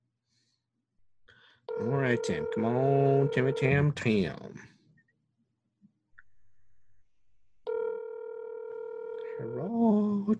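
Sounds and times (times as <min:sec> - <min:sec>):
electronic ringing tone from an outgoing phone call: 0:01.7 - 0:03.9, 0:07.7 - 0:09.7
speech: 0:01.8 - 0:04.7.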